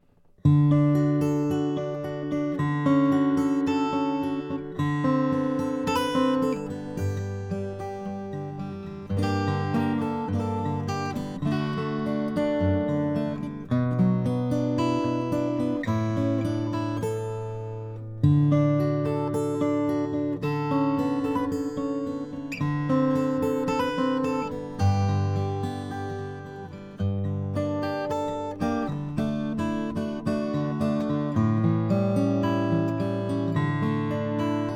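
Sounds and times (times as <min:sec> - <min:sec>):
cutaway German maple guitar playing: 0:00.4 - 0:34.7.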